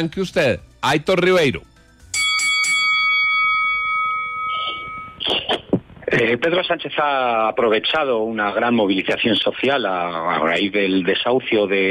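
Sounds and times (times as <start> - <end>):
speech: 0.0 - 1.7, 6.3 - 11.8
bell ringing to signal turn change: 2.1 - 5.3.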